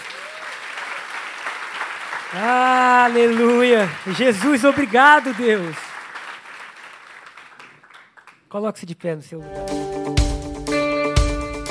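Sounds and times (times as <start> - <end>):
congregation applauding: 0.0 - 8.5
speech: 2.3 - 5.8, 8.5 - 10.3.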